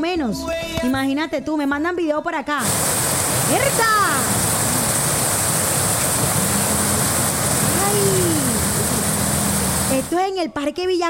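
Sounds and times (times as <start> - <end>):
speech: 0.1 - 4.4, 10.0 - 11.0
heavy rain downpour: 2.6 - 10.2
passing tonal sound: 2.6 - 10.2.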